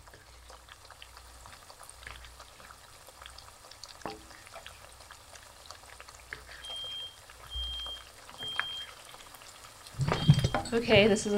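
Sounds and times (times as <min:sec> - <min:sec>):
pancakes frying in oil in a pan: 0:00.0 - 0:11.3
smoke detector high-pitched electronic beeps: 0:06.5 - 0:09.0, 0:10.0 - 0:10.7
speech: 0:10.7 - 0:11.3.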